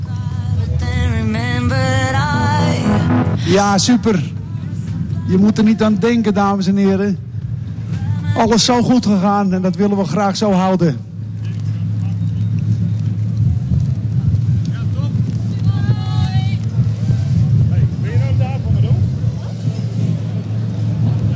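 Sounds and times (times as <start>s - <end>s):
engine running with a loud low rumble: 0.0s - 5.2s, 9.4s - 21.3s
outdoor noise: 0.0s - 21.3s
harmonic voice traces: 2.1s - 3.8s
speech: 3.5s - 4.4s, 5.3s - 7.3s, 8.4s - 11.1s.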